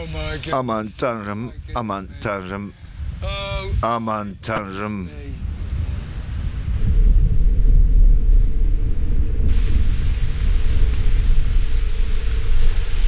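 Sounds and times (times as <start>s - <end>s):
heavy stormy wind roaring: 0.0s - 13.0s
speech: 0.3s - 5.3s
steady rain in stormy weather: 9.5s - 13.0s.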